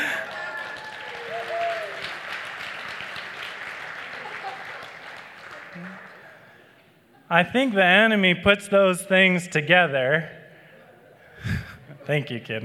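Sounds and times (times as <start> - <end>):
faint voices and whoops: 0.0 - 2.1
crowd applauding: 0.0 - 6.6
speech: 7.3 - 10.4, 12.1 - 12.6.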